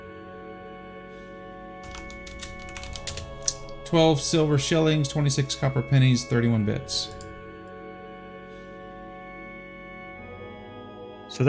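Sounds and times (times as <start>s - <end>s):
typing on a computer keyboard: 1.8s - 4.3s, 6.9s - 7.4s
low hum: 1.8s - 7.7s
speech: 3.9s - 7.2s.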